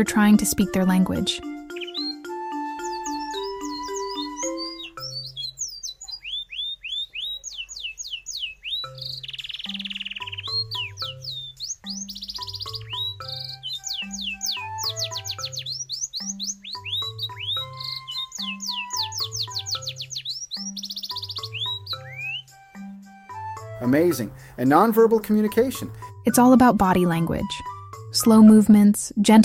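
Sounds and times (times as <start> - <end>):
speech: 0.0 - 1.6, 24.0 - 27.6, 28.2 - 29.4
voice imitating birds with whistled chirps: 1.7 - 23.8.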